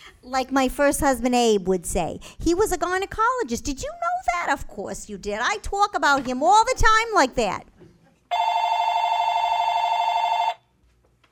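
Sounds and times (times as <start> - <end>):
speech: 0.2 - 7.7
telephone ringing with a bright buzzing electronic trill: 8.3 - 10.7.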